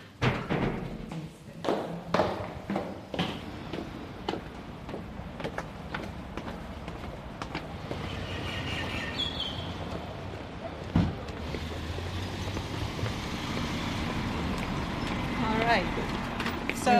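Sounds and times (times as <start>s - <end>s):
outdoor street noise: 0.0s - 16.9s
bus engine rumbling and revving pulling away from a bus stop: 11.3s - 16.7s.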